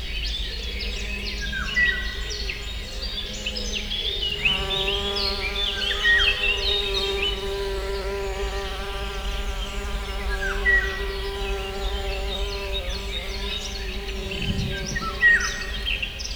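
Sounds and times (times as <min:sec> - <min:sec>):
birds chirping and trilling: 0:00.2 - 0:16.3
wasps buzzing at a water house: 0:03.5 - 0:16.1.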